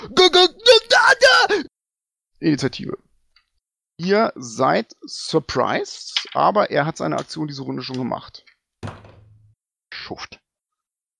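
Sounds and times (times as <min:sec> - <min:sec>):
acted scream of pain: 0:00.0 - 0:01.7
speech: 0:00.1 - 0:00.6, 0:02.4 - 0:03.1, 0:04.0 - 0:09.0, 0:10.1 - 0:10.4.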